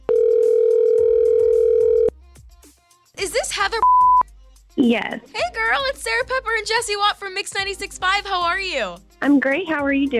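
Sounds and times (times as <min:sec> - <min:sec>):
telephone ringback tone heard through the line: 0:00.0 - 0:02.1
speech: 0:03.6 - 0:04.2, 0:04.8 - 0:10.1.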